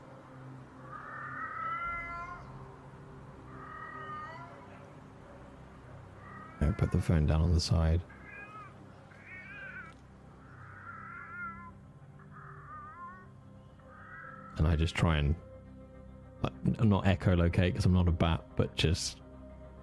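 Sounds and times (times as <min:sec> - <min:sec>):
black cat meowing in an apartment: 0:00.9 - 0:02.7, 0:03.5 - 0:04.9, 0:06.2 - 0:07.3, 0:08.0 - 0:11.8, 0:12.4 - 0:13.3
speech: 0:06.6 - 0:08.2, 0:14.8 - 0:15.5, 0:16.7 - 0:19.2.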